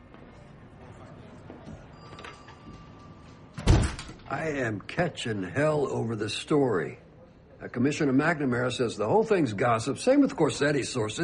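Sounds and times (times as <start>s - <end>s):
office door swinging shut: 3.6s - 4.2s
speech: 4.3s - 7.0s, 7.6s - 11.2s.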